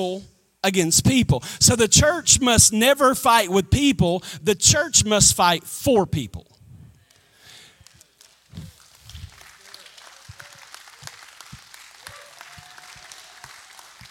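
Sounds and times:
speech: 0.0s - 6.5s
audience clapping politely: 7.0s - 14.0s.

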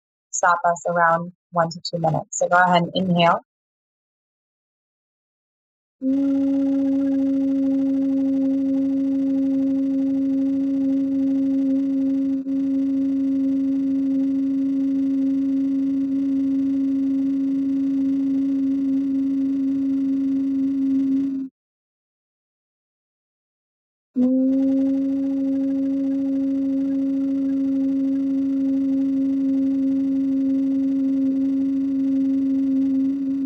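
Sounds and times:
speech: 0.4s - 3.5s, 6.0s - 7.9s
person humming a low sustained note during a breathing exercise: 6.0s - 21.5s, 24.2s - 33.4s.

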